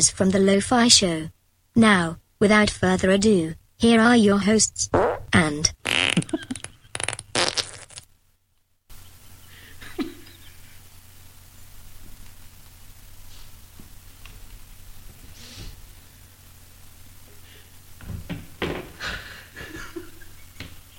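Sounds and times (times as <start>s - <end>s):
speech: 0.0s - 6.6s
faint hiss: 0.0s - 20.9s
loud sputtering fart: 4.9s - 8.1s.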